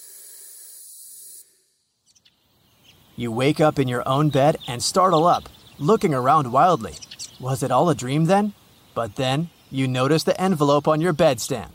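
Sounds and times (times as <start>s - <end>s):
steady airy hissing: 0.0s - 1.7s
faint brief chirps: 0.0s - 11.7s
speech: 3.2s - 11.7s.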